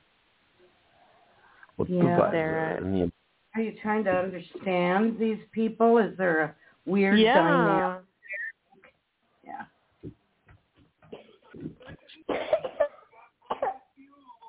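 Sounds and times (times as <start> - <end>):
speech: 1.8 - 8.0
young child coughing: 11.1 - 13.9.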